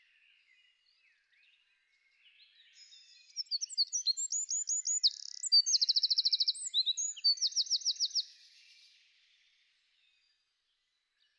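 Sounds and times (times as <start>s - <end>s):
Eurasian wren singing with machine-gun trills: 3.4s - 8.2s.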